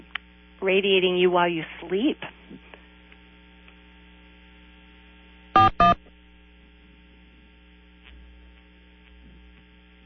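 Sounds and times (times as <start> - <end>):
low steady hum: 0.0 - 10.0
speech: 0.6 - 2.4
phone system electronic beeps on a call line: 5.6 - 6.0.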